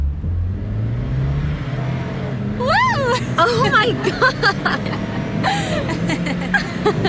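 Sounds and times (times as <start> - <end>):
Porsche convertible engine revving and accelerating: 0.0 - 7.0
road and wind noise: 0.0 - 7.0
laughter: 2.6 - 7.0
speech: 3.4 - 7.0.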